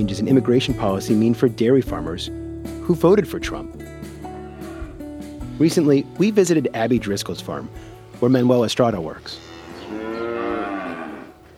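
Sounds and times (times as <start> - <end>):
speech: 0.0 - 3.9, 5.6 - 9.5
dairy cow mooing inside a barn on a dairy farm: 4.3 - 5.1, 9.2 - 11.5.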